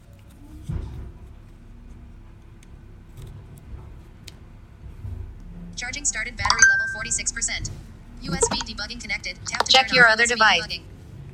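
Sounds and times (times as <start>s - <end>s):
garbage truck engine rumbling outside: 0.0s - 11.3s
ticking clicks: 5.4s - 10.8s
speech: 5.8s - 10.9s.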